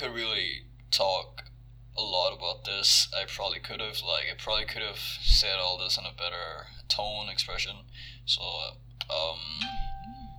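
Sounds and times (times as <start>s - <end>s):
speech: 0.0s - 9.8s
low room hum: 0.0s - 10.3s
mobile phone ringing: 9.6s - 10.3s.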